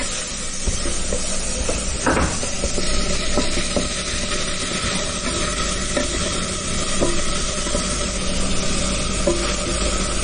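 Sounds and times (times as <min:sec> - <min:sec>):
onions frying in olive oil in a pan: 0:00.0 - 0:10.2
scrapes and clinks of stirring in a pan: 0:02.4 - 0:10.2.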